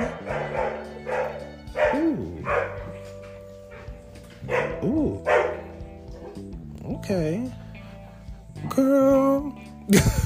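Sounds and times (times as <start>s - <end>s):
dog barking: 0.0s - 6.5s
speech: 7.1s - 7.6s, 8.8s - 10.2s
laughter: 9.9s - 10.2s.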